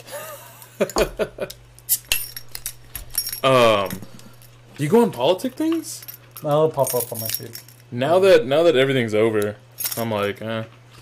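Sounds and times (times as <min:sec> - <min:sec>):
speech: 0:00.8 - 0:02.1, 0:03.4 - 0:04.1, 0:04.8 - 0:10.8
thrown keys jangling: 0:00.8 - 0:04.6, 0:05.6 - 0:07.9.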